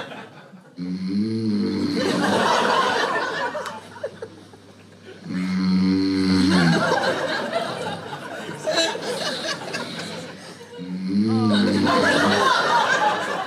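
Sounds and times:
laughter: 0:00.0 - 0:00.8, 0:01.8 - 0:05.3, 0:06.2 - 0:13.4
man snoring while asleep: 0:00.8 - 0:02.4, 0:05.2 - 0:06.9, 0:10.8 - 0:12.4
quiet breathing: 0:09.1 - 0:10.8.

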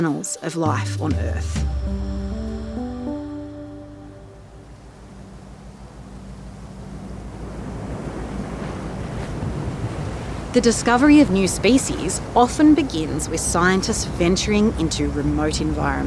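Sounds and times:
speech: 0:00.0 - 0:02.2, 0:10.6 - 0:16.0
research vessel engine droning in the Indian Ocean: 0:01.6 - 0:16.0
rushing waves of the Indian Ocean: 0:01.6 - 0:16.0
wind noise: 0:04.6 - 0:16.0.

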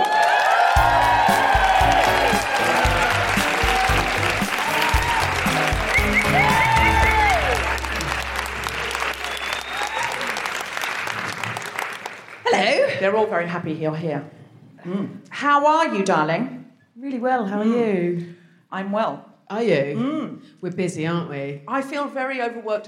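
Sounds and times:
live-show audience applause: 0:00.0 - 0:12.5
speech: 0:13.3 - 0:22.8.

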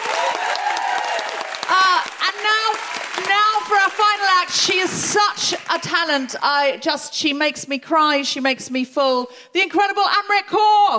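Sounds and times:
festival crowd cheering and whooping: 0:00.0 - 0:02.0
festival audience applause: 0:00.0 - 0:05.9
speech: 0:03.8 - 0:10.9.

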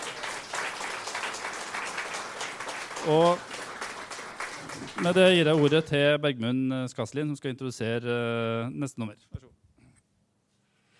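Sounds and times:
audience applause: 0:00.0 - 0:05.9
speech: 0:03.0 - 0:03.6, 0:04.8 - 0:09.6.

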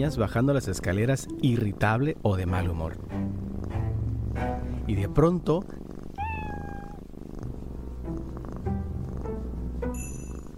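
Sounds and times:
speech: 0:00.0 - 0:03.5, 0:04.4 - 0:05.8
cat purring: 0:00.0 - 0:10.5
cat meowing: 0:06.1 - 0:07.1.

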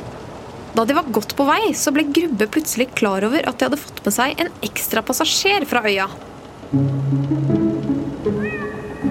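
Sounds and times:
speech: 0:00.7 - 0:07.5
cat meowing: 0:08.3 - 0:09.0.

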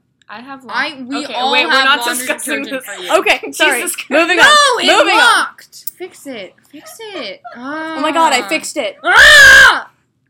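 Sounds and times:
speech: 0:00.3 - 0:09.9
person screaming: 0:09.0 - 0:09.9.

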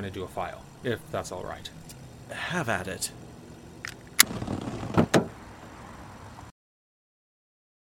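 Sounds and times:
speech: 0:00.0 - 0:03.2, 0:04.3 - 0:04.6
car engine starting with low mechanical rumble: 0:03.2 - 0:06.4
car door shutting: 0:03.9 - 0:05.4
heavier clunks: 0:04.2 - 0:05.4.

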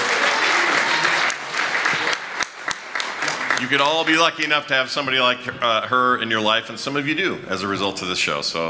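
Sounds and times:
audience applause: 0:00.0 - 0:05.1
speech: 0:03.6 - 0:08.6.

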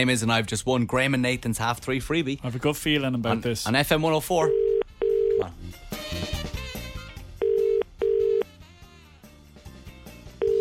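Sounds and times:
speech: 0:00.0 - 0:04.6, 0:05.4 - 0:06.3
music: 0:04.2 - 0:10.5
electronic phone ring tones of a call ringing out: 0:04.5 - 0:05.5, 0:07.4 - 0:08.5.

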